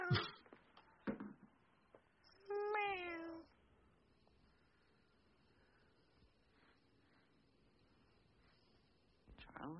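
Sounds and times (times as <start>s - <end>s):
cat meowing: 2.5s - 3.4s.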